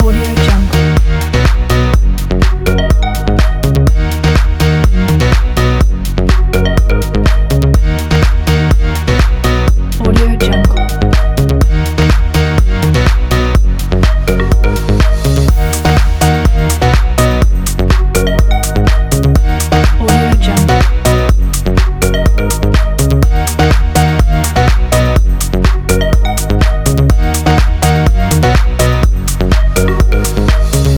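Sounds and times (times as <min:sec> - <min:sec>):
house music loop: 0:00.0 - 0:30.9.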